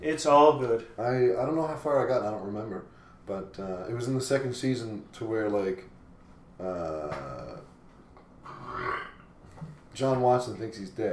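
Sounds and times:
speech: 0:00.1 - 0:05.9, 0:06.6 - 0:07.7, 0:10.0 - 0:11.1
man burping: 0:06.7 - 0:07.7, 0:08.5 - 0:09.3
breathy noise: 0:08.4 - 0:09.3.

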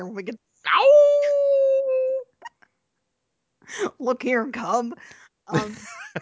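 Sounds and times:
speech: 0:00.0 - 0:01.5, 0:03.7 - 0:06.2
human voice imitating a wolf howl: 0:00.7 - 0:02.2
faint vocal yips: 0:00.7 - 0:02.3.

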